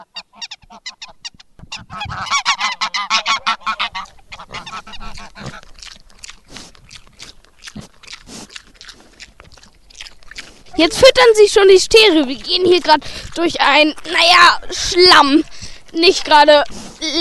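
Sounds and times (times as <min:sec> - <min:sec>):
flock of geese honking on a farm during feeding time: 0:00.0 - 0:05.6
farmyard noise: 0:00.0 - 0:17.1
speech: 0:10.8 - 0:17.1.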